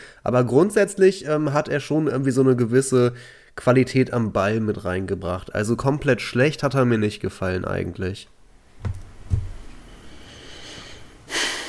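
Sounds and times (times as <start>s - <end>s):
speech: 0.2s - 9.4s
heavy exasperated breathing with a groan-like edge: 3.2s - 3.6s, 9.7s - 11.6s.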